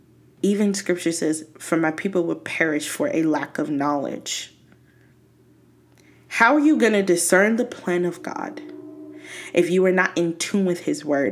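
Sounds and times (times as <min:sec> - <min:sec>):
speech: 0:00.4 - 0:04.6, 0:06.4 - 0:11.3
horn of a passing train: 0:06.6 - 0:10.5.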